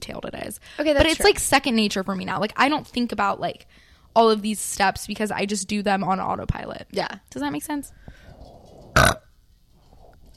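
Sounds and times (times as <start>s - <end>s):
speech: 0.1s - 8.2s
burp: 8.7s - 9.3s.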